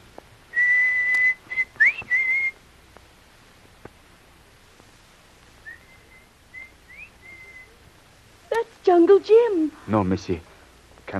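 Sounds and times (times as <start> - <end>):
person whistling a high signal note with an upward flick: 0.6 - 2.6, 5.6 - 7.8
speech: 9.0 - 10.5.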